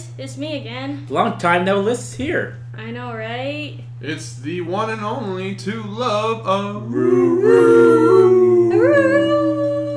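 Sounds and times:
speech: 0:00.2 - 0:09.4
wolf howling: 0:06.9 - 0:09.9.

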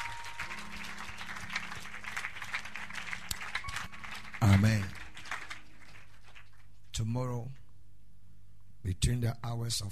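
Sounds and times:
church audience clapping hands: 0:00.0 - 0:07.0
speech: 0:04.5 - 0:05.0, 0:07.0 - 0:07.6, 0:08.8 - 0:09.9.

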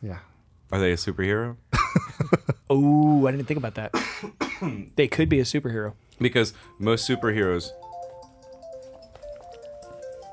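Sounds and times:
speech: 0:00.0 - 0:07.8
mobile phone ringtone: 0:06.6 - 0:10.3.

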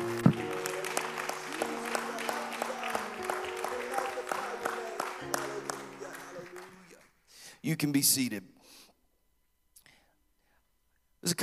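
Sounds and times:
sustained organ or keyboard tone: 0:00.0 - 0:07.0
audience clapping hands in praise: 0:00.0 - 0:07.2
speech: 0:07.8 - 0:08.5.

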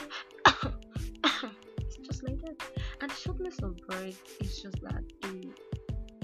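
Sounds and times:
person imitating asthmatic coughing: 0:00.1 - 0:01.6
speech: 0:02.2 - 0:05.6.

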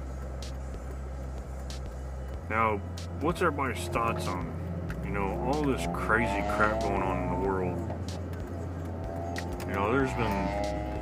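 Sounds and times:
engine rumble and road noise inside a moving car: 0:00.0 - 0:10.9
faint passing traffic: 0:00.0 - 0:10.9
speech: 0:02.5 - 0:08.2, 0:09.7 - 0:10.9.

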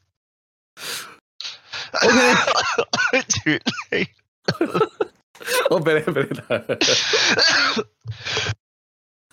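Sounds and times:
coughing brought on by laughing: 0:01.9 - 0:05.7, 0:06.9 - 0:07.9
speech: 0:03.5 - 0:04.1, 0:05.7 - 0:08.5.

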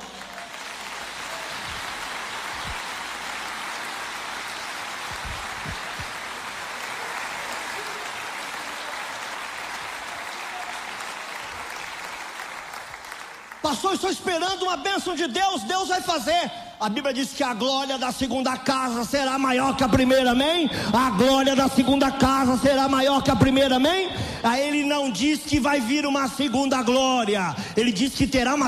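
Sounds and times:
audience applauding: 0:00.0 - 0:14.3
speech: 0:13.7 - 0:28.6.

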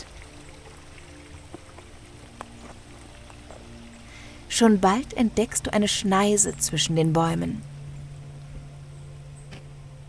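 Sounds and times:
water splashes and drips: 0:00.0 - 0:06.0
river water bubbling and splashing beside a riverbank: 0:00.0 - 0:09.4
speech: 0:04.5 - 0:07.7.

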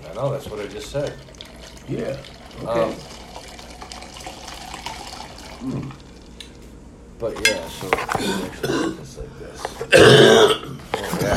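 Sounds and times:
speech: 0:00.2 - 0:03.2, 0:05.6 - 0:06.0, 0:07.2 - 0:11.3
harsh raspy cough after smoking weed: 0:08.2 - 0:09.0, 0:09.8 - 0:10.8.

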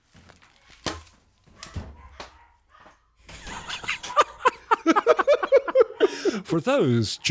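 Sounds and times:
dog barking: 0:01.6 - 0:04.3
laughter: 0:03.3 - 0:06.9
speech: 0:06.5 - 0:07.2.

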